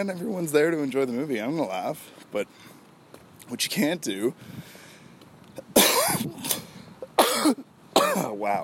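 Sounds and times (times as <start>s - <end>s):
speech: 0.0s - 2.8s, 3.5s - 4.8s, 7.4s - 8.6s
harsh coughs after swallowing a bug: 5.8s - 6.3s, 7.2s - 8.3s.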